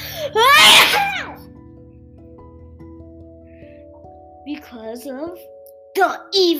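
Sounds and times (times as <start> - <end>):
child imitating a sneeze: 0.6 - 1.3
speech: 4.6 - 6.5.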